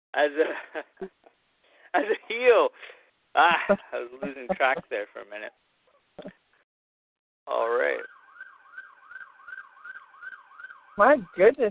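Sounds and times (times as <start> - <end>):
laughter: 0.2 - 1.3, 2.0 - 2.6, 3.4 - 5.2
speech: 0.2 - 1.3, 1.9 - 6.4, 7.5 - 8.2, 11.0 - 11.6
ambulance siren warbling: 7.5 - 11.6.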